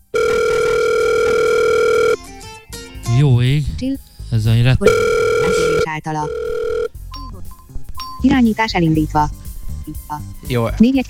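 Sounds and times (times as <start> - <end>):
telephone dial tone: 0.0 - 2.2, 4.9 - 6.9
speech: 3.8 - 6.5, 8.2 - 11.0.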